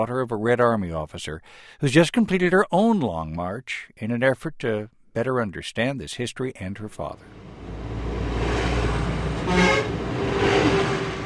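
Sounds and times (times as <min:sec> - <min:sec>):
speech: 0:00.0 - 0:07.4
bus engines rumbling up a mountain road above the Min River in China: 0:07.2 - 0:11.2
bus horn tooting: 0:08.6 - 0:11.2.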